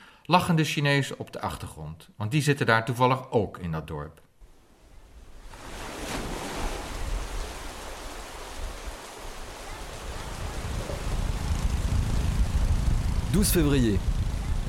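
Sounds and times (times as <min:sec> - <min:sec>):
speech: 0:00.3 - 0:04.3, 0:13.4 - 0:14.2
sea waves on the South China Sea: 0:04.5 - 0:14.6.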